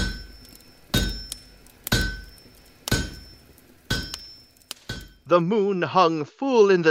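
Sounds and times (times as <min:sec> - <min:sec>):
blacksmith's hammer clanging on anvil: 0:00.0 - 0:05.2
speech: 0:05.3 - 0:06.9.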